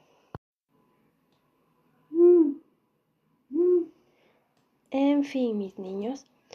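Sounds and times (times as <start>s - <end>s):
owl hooting: 2.1s - 2.7s, 3.5s - 4.0s
speech: 4.9s - 6.4s.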